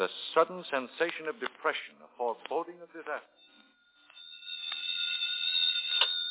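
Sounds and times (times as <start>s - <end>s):
speech: 0.0s - 3.5s
telephone ringing with a shrill electronic tone: 3.3s - 6.2s.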